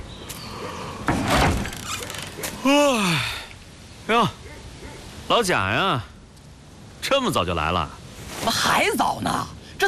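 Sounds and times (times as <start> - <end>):
door being opened: 1.1 - 2.5
speech: 4.1 - 4.4, 5.3 - 6.1, 7.1 - 9.8.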